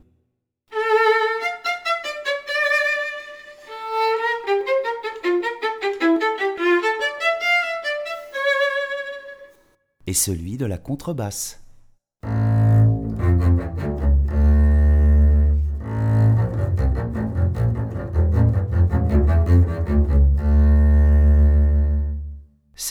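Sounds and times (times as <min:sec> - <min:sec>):
violin: 0:00.7 - 0:09.6, 0:12.2 - 0:22.4
double bass: 0:12.2 - 0:22.4.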